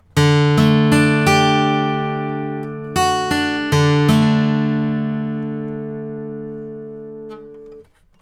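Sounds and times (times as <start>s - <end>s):
guitar with vintage EQ: 0.0s - 8.2s.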